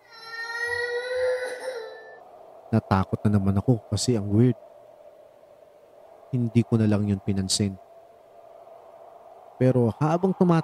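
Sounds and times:
child crying with a high wavering wail at night in a bedroom: 0.0s - 2.2s
speech: 2.7s - 4.7s, 6.3s - 7.8s, 9.6s - 10.6s.

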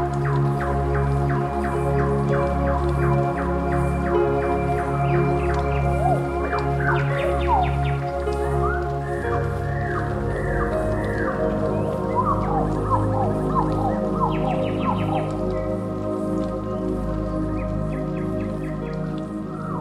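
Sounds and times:
nightingale singing at night: 0.0s - 19.8s.

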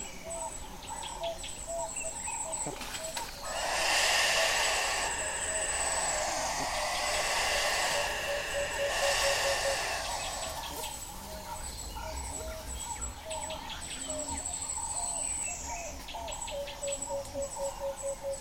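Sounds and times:
birds chirping and whistling at dawn in the savanna: 0.5s - 18.4s
unidentified creature calling at dawn in the savanna: 3.4s - 11.0s.

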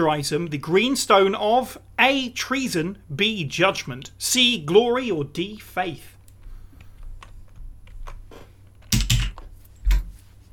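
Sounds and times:
speech: 0.0s - 6.1s
computer keyboard keys tapped: 8.8s - 9.4s.

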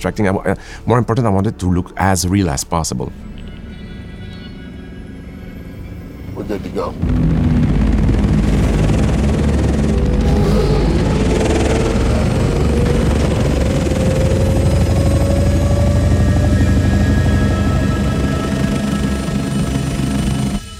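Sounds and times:
speech: 0.0s - 3.4s, 6.5s - 7.6s
dragonfly-like ornithopter aircraft whirring and buzzing: 5.8s - 20.7s.

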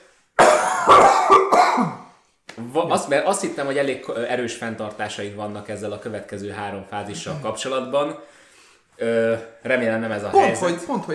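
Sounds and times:
person coughing after swallowing the wrong way: 0.4s - 2.1s
speech: 2.8s - 8.4s, 9.0s - 11.1s.

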